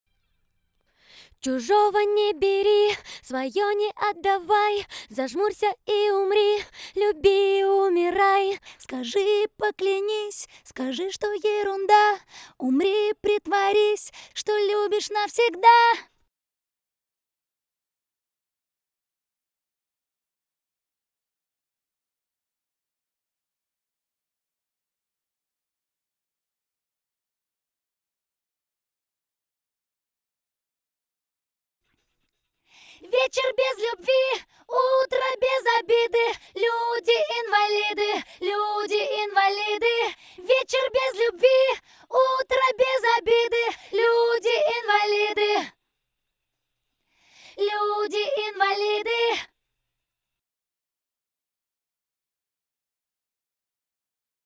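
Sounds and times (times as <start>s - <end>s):
dry acapella vocal: 1.4s - 16.1s, 33.0s - 45.7s, 47.6s - 49.5s.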